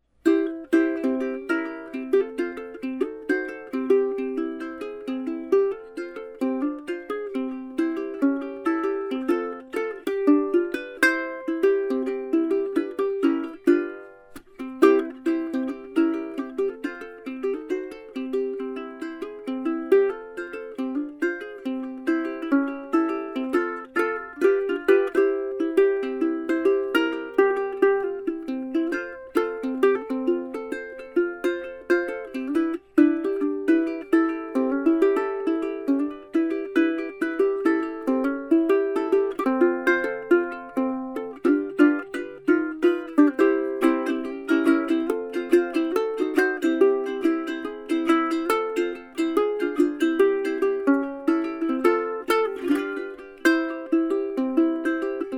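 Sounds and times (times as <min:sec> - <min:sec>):
soprano resonator guitar with cone: 0:00.2 - 0:55.3.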